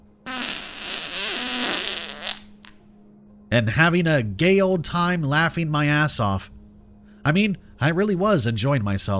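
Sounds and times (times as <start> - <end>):
long loud fart after eating bean and cheese burritos and soft tacos: 0.2 - 2.8
speech: 3.5 - 6.5, 7.2 - 9.1.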